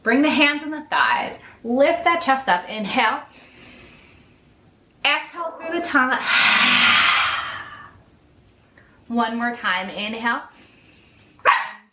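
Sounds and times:
speech: 0.0 - 3.4, 5.0 - 7.2, 9.1 - 10.6
female pet dachshund barking: 11.4 - 11.9.

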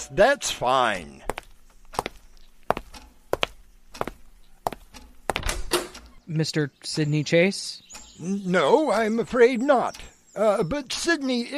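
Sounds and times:
speech: 0.0 - 1.3, 6.3 - 11.5
footsteps on hard floor: 1.3 - 5.6
door rattling as pulled open: 4.9 - 6.2.

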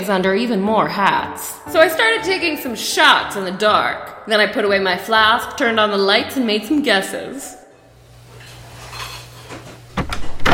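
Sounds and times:
speech: 0.0 - 7.6
dishes being handled in a cruise ship kitchen: 8.4 - 10.3.

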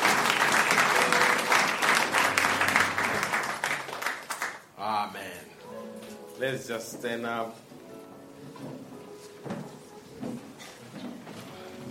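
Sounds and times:
church service crowd applauding: 0.0 - 4.7
speech: 6.4 - 7.7.

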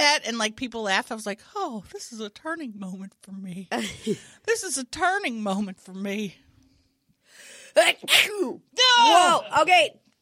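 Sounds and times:
speech: 0.2 - 6.4, 7.7 - 10.0
sneeze into microphone: 7.8 - 8.6.

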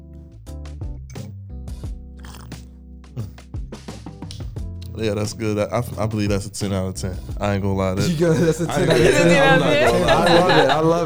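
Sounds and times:
person slurping hot lemon tea: 1.1 - 1.3, 2.2 - 3.4, 4.3 - 8.3
laughter: 4.9 - 11.0
speech: 5.0 - 11.0.

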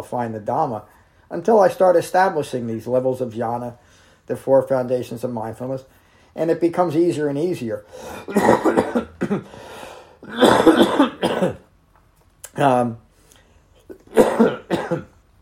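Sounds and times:
speech: 0.0 - 11.6, 12.6 - 13.0, 14.2 - 15.1
person coughing from blood pressure medicine: 8.1 - 11.7, 13.9 - 15.2.

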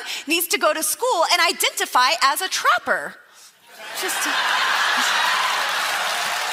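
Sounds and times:
speech: 0.2 - 3.2, 4.0 - 5.1
live comedy audience laughter: 3.9 - 5.6
live comedy audience applause: 4.0 - 6.5.

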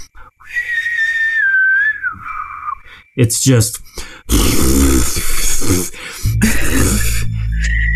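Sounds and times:
person imitating bad whistling: 0.0 - 2.8, 4.3 - 7.9
speech: 3.2 - 4.1
voice imitating spitting: 4.3 - 7.3.

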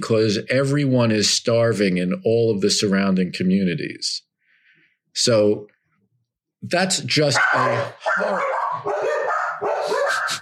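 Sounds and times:
speech: 0.0 - 4.3, 5.2 - 5.7, 6.6 - 9.1
several dogs barking excitedly: 7.3 - 10.4
high dog yips: 7.4 - 10.4.

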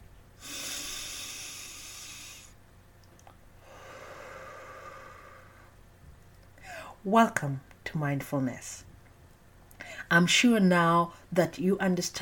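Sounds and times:
slow breathing in and out: 0.4 - 2.6, 3.6 - 5.8
speech: 7.0 - 8.9, 10.1 - 12.2.

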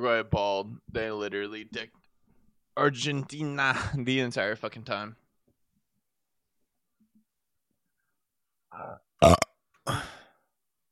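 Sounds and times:
speech: 0.0 - 2.0, 2.8 - 5.2, 8.8 - 10.1
throaty burps after drinking Coca-Cola: 8.7 - 10.2.

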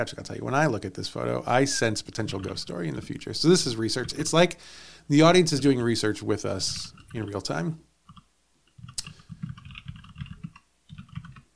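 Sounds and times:
speech: 0.0 - 7.9
typing on a computer keyboard: 9.0 - 11.5.

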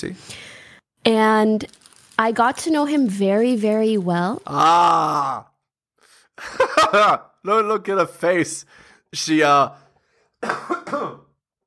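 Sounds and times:
speech: 0.0 - 5.5, 6.4 - 9.8
person coughing: 10.4 - 11.4.

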